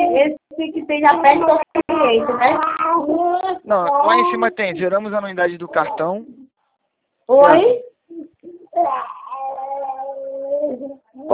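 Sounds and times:
speech: 0.2s - 6.4s, 7.3s - 9.2s, 10.6s - 11.3s
baby crying with whimpers and wail: 1.1s - 4.8s, 7.3s - 11.3s.

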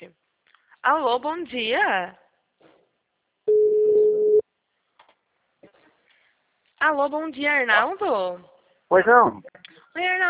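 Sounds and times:
speech: 0.8s - 2.2s, 6.8s - 10.2s
ringback tone of an outgoing phone call: 3.5s - 4.4s.

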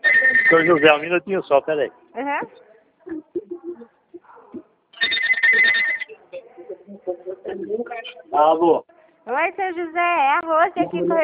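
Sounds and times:
speech: 0.5s - 3.4s, 7.5s - 11.2s
landline telephone ringing with electronic trilling: 5.0s - 6.2s.

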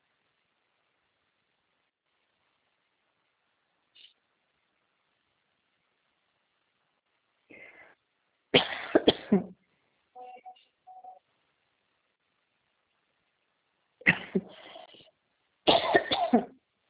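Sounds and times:
harsh coughing bursts: 8.6s - 9.5s, 14.0s - 15.0s, 15.7s - 16.6s.

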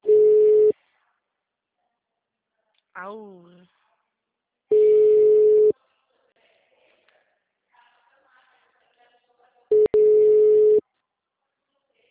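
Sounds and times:
telephone busy tone after a dropped call: 0.0s - 0.7s, 4.7s - 5.7s, 9.7s - 10.8s
speech: 3.0s - 3.6s.

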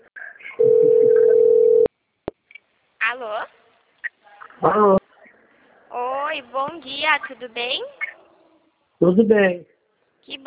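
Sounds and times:
telephone ringing tone on an outgoing call: 0.6s - 1.9s
speech: 4.6s - 5.0s, 6.7s - 8.0s, 9.0s - 10.4s.

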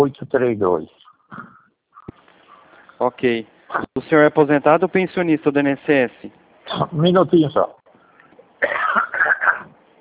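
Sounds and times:
speech: 0.0s - 1.6s, 3.0s - 7.8s
retired man clearing his throat: 8.6s - 9.7s.

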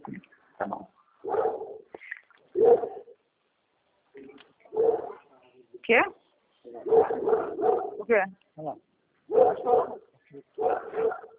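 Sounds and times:
dog barking: 1.2s - 1.9s, 2.6s - 3.2s, 4.7s - 5.3s, 6.8s - 8.0s, 9.3s - 11.3s
speech: 5.9s - 6.2s, 8.1s - 8.9s.

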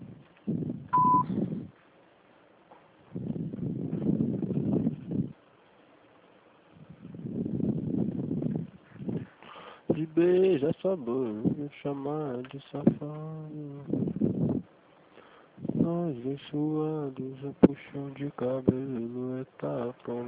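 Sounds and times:
low-pitched sound: 0.0s - 1.8s, 3.1s - 5.4s, 6.8s - 14.7s, 15.6s - 20.2s
voicemail system beep before recording a message: 1.0s - 1.3s
speech: 10.2s - 14.0s, 15.9s - 20.2s.

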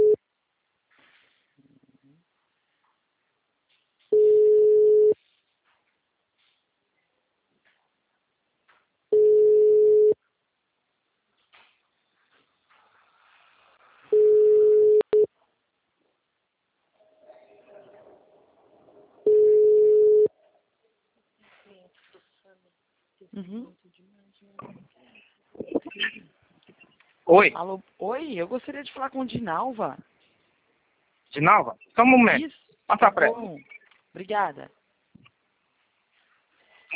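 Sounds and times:
telephone ringback tones while placing a call: 4.2s - 5.2s, 9.2s - 10.2s, 14.1s - 15.3s, 19.2s - 20.3s
speech: 23.4s - 23.8s, 27.3s - 30.1s, 31.4s - 34.8s.

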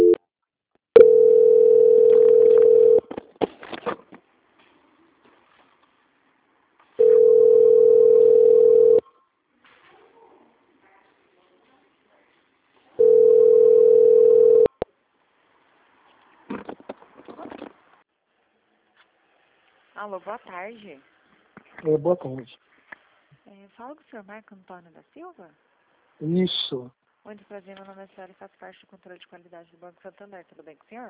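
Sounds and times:
steady mid-pitched telephone tones during call transfer: 0.0s - 0.2s, 1.0s - 3.1s, 7.0s - 9.1s, 13.0s - 14.8s
speech: 20.1s - 21.2s, 21.8s - 22.7s, 23.7s - 31.0s.

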